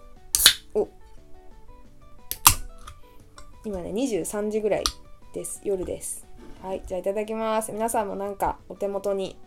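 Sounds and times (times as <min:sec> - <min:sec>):
can of lemon sour cracked open with pop and hiss: 0:00.3 - 0:00.7, 0:02.3 - 0:03.0
speech: 0:00.8 - 0:01.0, 0:03.6 - 0:09.4.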